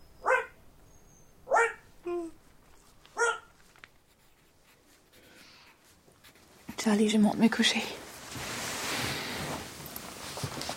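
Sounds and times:
dog barking: 0.2s - 0.6s, 1.5s - 1.8s, 3.2s - 3.5s
speech: 6.8s - 8.0s.

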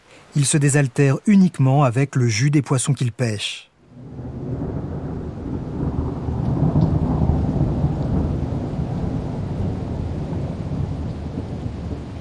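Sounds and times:
heavy tropical rain: 0.0s - 12.1s
speech: 0.4s - 3.7s
deep thunder rumbling: 3.8s - 12.1s.

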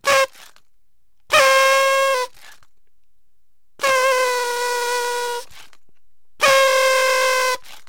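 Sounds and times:
party blower toy honking nasally with buzzy reedy tone: 0.0s - 0.6s, 1.3s - 2.6s, 3.8s - 5.5s, 6.4s - 7.8s.

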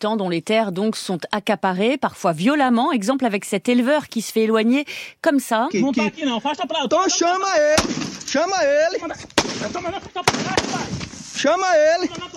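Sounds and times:
speech: 0.0s - 12.3s
raised talking voices: 5.5s - 12.3s
gunshots fired into the air by a future cotton plantation guard in Brazil's Cerrado: 7.7s - 8.4s, 9.4s - 11.2s.

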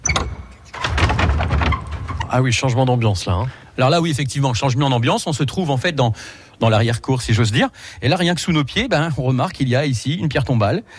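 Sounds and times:
latch clicks of a heavy church side door: 0.0s - 1.8s
heavy church side door scraping as it swings open: 0.0s - 2.5s
speech: 2.3s - 10.9s.

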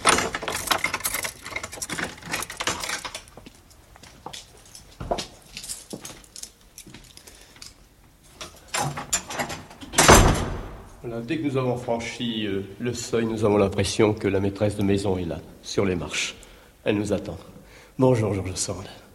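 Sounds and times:
door scraping and creaking as it swings open: 0.0s - 3.4s, 8.4s - 10.9s
lock clicking and turning with metallic ratcheting: 0.0s - 3.8s, 8.4s - 10.6s
keys jingling: 0.0s - 10.1s
speech: 11.1s - 19.0s.

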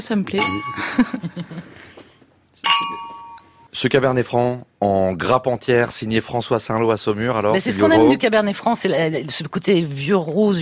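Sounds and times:
speech: 0.0s - 2.0s, 2.6s - 3.2s, 3.8s - 10.6s
two wine glasses clinking together in a toast: 0.4s - 1.2s, 2.6s - 3.7s
laughter: 0.8s - 1.8s.

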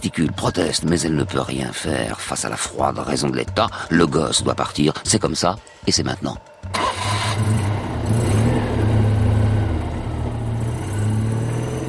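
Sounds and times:
speech: 0.0s - 7.7s
car engine accelerating: 6.6s - 11.8s.

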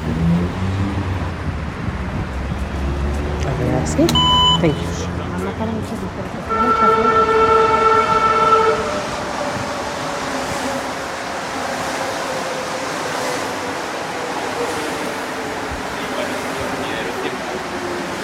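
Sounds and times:
metro train passing: 0.0s - 18.2s
metro train horn blast: 6.4s - 9.2s.

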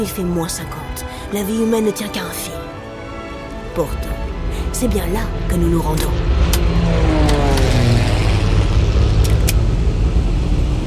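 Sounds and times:
speech: 0.0s - 2.6s, 3.8s - 7.0s
small ski-equipped twin propeller plane engine roaring over the Arctic: 2.8s - 10.8s.

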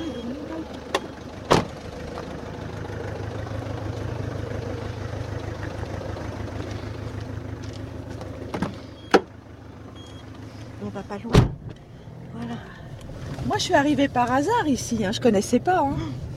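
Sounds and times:
car engine idling: 0.0s - 16.3s
car doors shutting and seats settling: 0.9s - 1.8s, 8.5s - 9.3s, 11.3s - 11.8s
speech: 11.1s - 11.4s, 13.6s - 16.2s.

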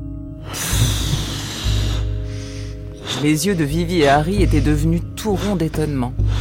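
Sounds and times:
soft exhale through the mouth: 0.4s - 3.4s
noisy rushing inhale through the nose: 0.4s - 6.3s
speech: 3.2s - 6.2s.

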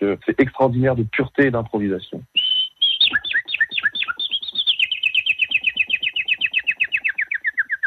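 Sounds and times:
speech: 0.0s - 2.4s
common nightingale singing: 2.2s - 7.8s.

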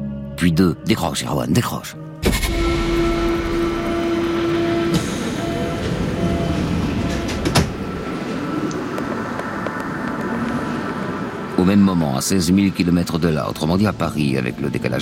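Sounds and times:
speech: 0.4s - 2.6s, 11.6s - 15.0s
sharp clank: 2.2s - 5.5s
ambient station noise: 2.3s - 15.0s
commuter train idling at a station platform: 2.6s - 10.1s.

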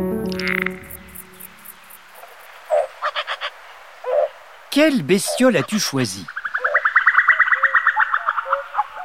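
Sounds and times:
female common cuckoo bubbling call: 0.2s - 1.7s, 5.2s - 9.0s
speech: 4.8s - 6.4s.

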